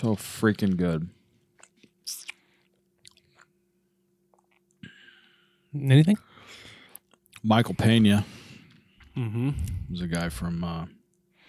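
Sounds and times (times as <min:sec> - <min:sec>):
speech: 0:00.0 - 0:01.2, 0:05.7 - 0:06.3, 0:07.4 - 0:08.4, 0:09.2 - 0:11.0
chewing on sticky barbecue: 0:01.6 - 0:03.6.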